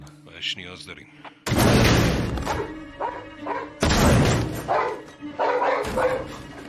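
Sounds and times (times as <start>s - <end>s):
speech: 0.4s - 1.4s, 2.5s - 3.8s
several dogs barking: 2.4s - 3.8s, 4.5s - 6.6s.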